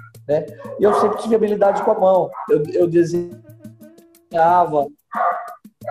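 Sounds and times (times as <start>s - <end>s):
speech: 0.3s - 3.5s, 4.3s - 5.3s
dog barking: 0.6s - 2.7s, 5.1s - 5.8s.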